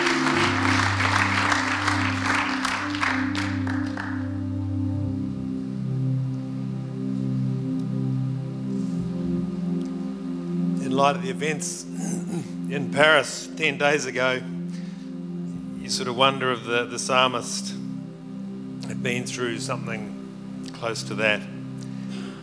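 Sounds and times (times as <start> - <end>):
audience clapping for a speaker: 0.0 - 4.5
sustained organ-like tones: 0.0 - 22.4
speech: 11.0 - 12.1, 12.7 - 14.5, 15.9 - 17.8, 19.0 - 20.2, 20.8 - 21.5.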